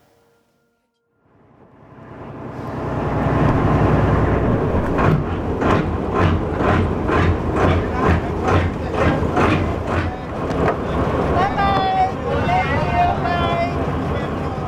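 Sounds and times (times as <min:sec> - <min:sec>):
high thin whistling tones: 0:00.0 - 0:01.0
wind: 0:01.3 - 0:14.6
boat rumble on open water: 0:01.5 - 0:14.6.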